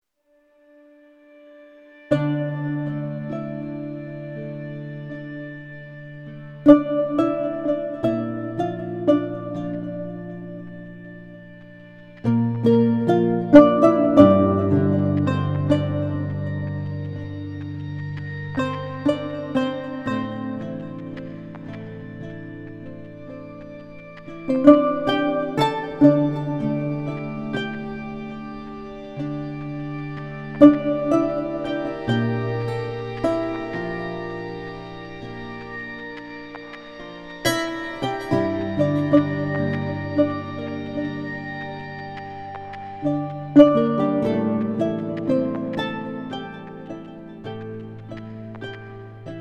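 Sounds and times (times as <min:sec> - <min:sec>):
lute: 0:00.3 - 0:49.4.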